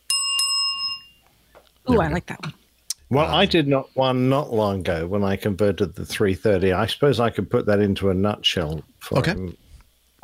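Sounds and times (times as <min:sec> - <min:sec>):
small metallic bell ringing: 0:00.0 - 0:01.2
speech: 0:01.9 - 0:09.6.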